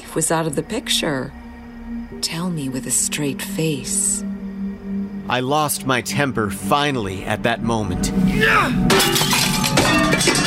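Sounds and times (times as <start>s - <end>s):
speech: 0.2s - 4.3s, 5.3s - 9.3s
framed photo glass smashed by a thrown pasta pot: 8.9s - 10.4s.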